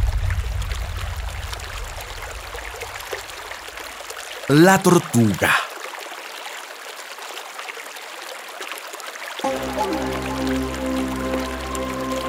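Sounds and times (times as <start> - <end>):
flowing stream: 0.1 - 12.2
speech: 4.5 - 5.6
low musical drone: 9.4 - 12.2.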